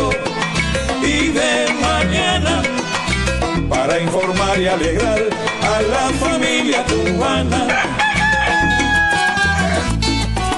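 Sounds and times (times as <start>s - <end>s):
bouncy musical backing with pulsing bass notes: 0.0s - 10.5s
speech: 3.8s - 8.1s
rooster crowing: 7.5s - 10.0s.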